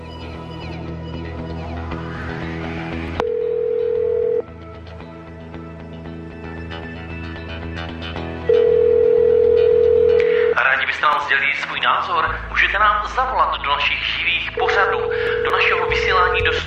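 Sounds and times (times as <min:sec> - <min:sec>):
music bed: 0:00.0 - 0:16.6
telephone tone: 0:03.2 - 0:04.5, 0:08.4 - 0:10.6, 0:14.6 - 0:16.4.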